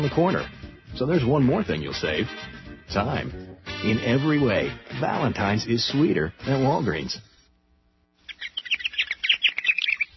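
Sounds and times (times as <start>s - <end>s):
speech: 0.0s - 7.3s
purple martin song of chirps and gurgling warbled notes: 8.2s - 10.1s.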